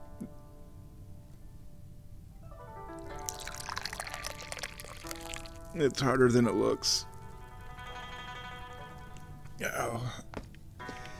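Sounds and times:
tea pouring into a cup: 3.0 - 9.3
speech: 5.8 - 7.1, 9.6 - 10.2.

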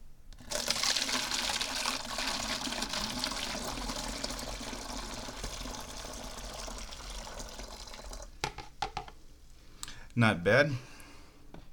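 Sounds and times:
hot tea poured from a teacup into a funnel in a bottle: 0.4 - 8.4
tea trickling and dripping: 0.4 - 8.4
speech: 10.2 - 10.9.

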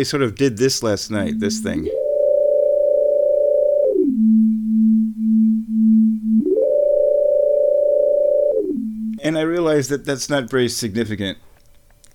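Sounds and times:
speech: 0.0 - 2.0, 9.2 - 11.5
buzzy electronic synthesizer tone gliding in pitch: 1.1 - 9.6.

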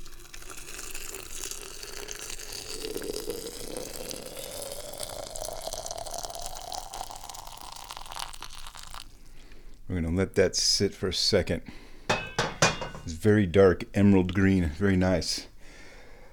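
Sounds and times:
water pouring into a cup of tea: 0.0 - 9.4
speech: 10.1 - 11.8, 13.2 - 15.5.

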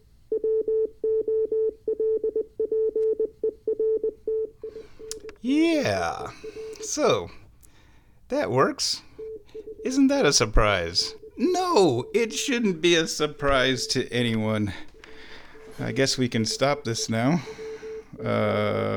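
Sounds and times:
Morse code tones sent over a radio: 0.5 - 7.4, 8.4 - 18.6
speech: 7.0 - 7.4, 8.4 - 9.1, 9.9 - 14.9, 15.8 - 17.6, 18.2 - 18.9.

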